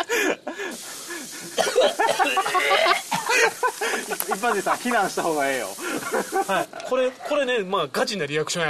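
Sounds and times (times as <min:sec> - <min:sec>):
gasps: 0:00.0 - 0:04.7, 0:05.5 - 0:06.7
laughter: 0:00.0 - 0:07.4
person coughing and choking from a foul smell: 0:01.5 - 0:03.5
speech: 0:04.4 - 0:08.6.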